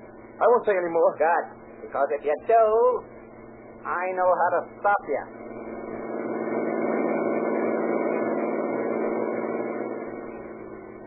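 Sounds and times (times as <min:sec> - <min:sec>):
engine drone from a car in motion: 0:00.0 - 0:11.0
speech: 0:00.5 - 0:03.1, 0:03.8 - 0:05.5.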